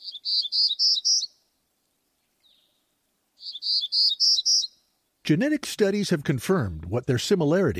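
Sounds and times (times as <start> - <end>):
Townsend's warbler song: 0.0 - 1.4, 2.2 - 4.9
speech: 5.3 - 7.7.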